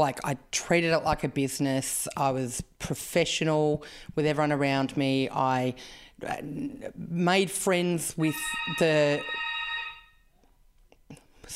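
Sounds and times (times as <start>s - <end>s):
speech: 0.0s - 9.5s
doorbell intercom buzzer ringing: 8.2s - 10.2s.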